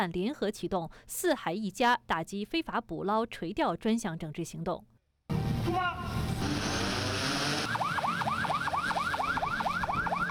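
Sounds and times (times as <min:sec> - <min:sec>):
speech: 0:00.0 - 0:04.9
law enforcement boats sounding sirens departing on an operation against illegal fishing: 0:06.4 - 0:10.2.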